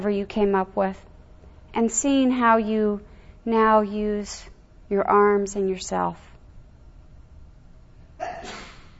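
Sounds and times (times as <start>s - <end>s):
speech: 0.0s - 1.1s, 1.7s - 6.3s
person sneezing: 8.2s - 8.9s.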